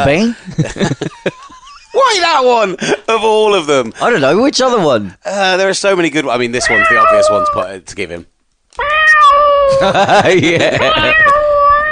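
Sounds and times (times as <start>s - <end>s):
speech: 0.0s - 1.4s, 2.0s - 8.9s, 9.7s - 11.4s
laughter: 0.5s - 3.1s, 9.7s - 11.5s
cat meowing: 6.6s - 7.7s, 8.8s - 9.9s, 10.8s - 11.9s.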